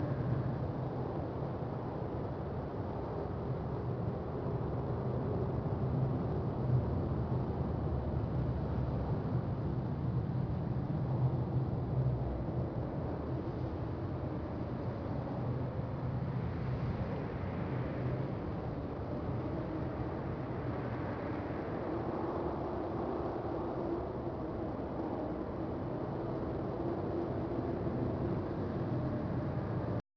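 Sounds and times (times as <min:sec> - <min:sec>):
blizzard wind: 0:00.0 - 0:30.0.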